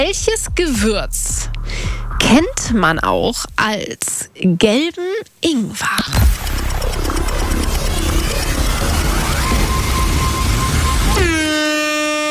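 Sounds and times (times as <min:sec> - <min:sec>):
speech: 0:00.0 - 0:01.4, 0:02.2 - 0:07.7
dense rushing noise with a faint rising tone: 0:06.2 - 0:11.4
air horn blast signalling time is up: 0:08.6 - 0:12.2.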